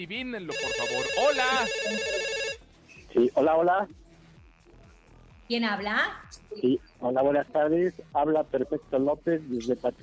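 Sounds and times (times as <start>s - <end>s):
speech: 0.0s - 2.5s, 3.1s - 4.0s, 5.5s - 10.0s
telephone ringing with electronic trill for incoming call: 0.5s - 2.6s.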